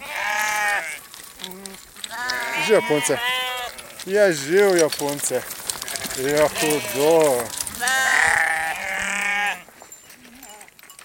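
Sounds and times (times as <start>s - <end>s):
sheep bleating at the top of a mountain in the morning: 0.0s - 9.7s
speech: 2.7s - 3.4s, 4.0s - 5.6s, 6.2s - 7.9s.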